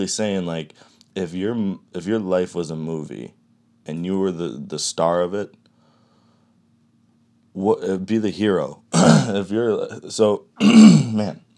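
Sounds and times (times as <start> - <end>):
speech: 0.0 - 5.6, 7.6 - 11.5
person with a lingering cough clearing their throat: 8.9 - 9.4, 10.6 - 11.3
person with a lingering cough coughing in rough voiced bursts: 9.0 - 9.4, 10.6 - 11.3.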